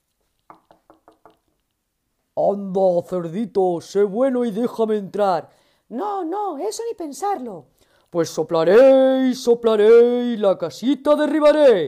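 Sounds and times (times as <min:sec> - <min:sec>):
knocking on a door: 0:00.5 - 0:01.4
speech: 0:02.4 - 0:11.8.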